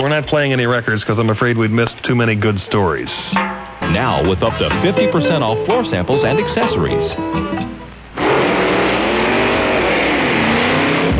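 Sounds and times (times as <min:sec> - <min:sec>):
speech: 0:00.0 - 0:07.8
car engine accelerating out of a parking lot: 0:08.2 - 0:11.1.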